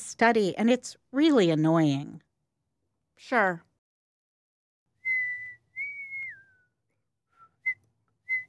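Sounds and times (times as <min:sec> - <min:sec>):
speech: 0:00.2 - 0:02.3, 0:03.2 - 0:03.7
person whistling: 0:05.0 - 0:08.4.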